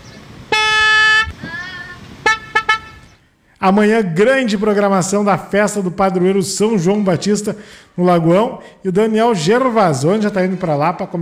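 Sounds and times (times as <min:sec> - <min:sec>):
car horn honking: 0:00.0 - 0:03.2
speech: 0:03.6 - 0:11.1.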